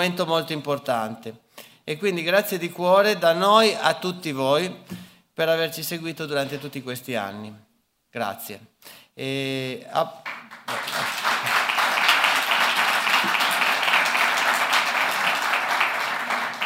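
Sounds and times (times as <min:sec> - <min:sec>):
speech: 0:00.0 - 0:11.2
audience applause: 0:10.2 - 0:16.6.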